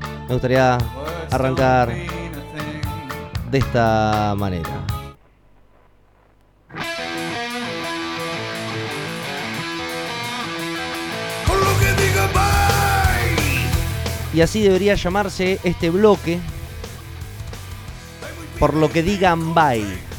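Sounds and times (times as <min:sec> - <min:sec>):
loud distorted rock music: 0:00.0 - 0:05.3, 0:06.1 - 0:20.1
speech: 0:00.3 - 0:02.2, 0:03.5 - 0:05.0, 0:14.4 - 0:16.5, 0:18.6 - 0:20.1
man screaming with long bending wails: 0:11.5 - 0:13.8.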